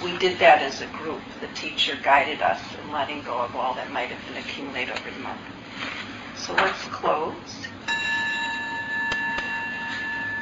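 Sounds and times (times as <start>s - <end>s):
speech: 0.2s - 5.6s, 6.4s - 7.8s
meditation bell ringing: 7.9s - 10.4s.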